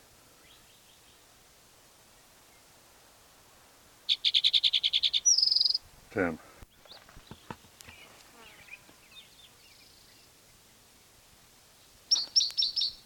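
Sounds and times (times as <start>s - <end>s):
bird singing: 4.1s - 5.8s, 6.7s - 11.1s, 11.8s - 13.0s
speech: 6.1s - 6.5s.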